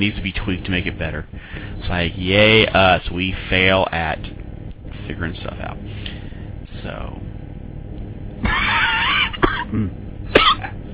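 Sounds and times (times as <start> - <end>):
speech: 0.0 - 4.4, 5.1 - 6.0, 6.8 - 7.2, 9.7 - 10.0
person clearing throat: 8.4 - 10.8
person coughing: 8.4 - 10.8.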